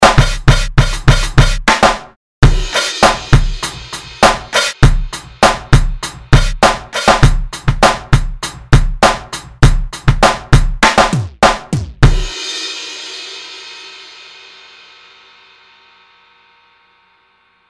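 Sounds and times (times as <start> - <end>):
hard garage music: 0.0 - 12.3.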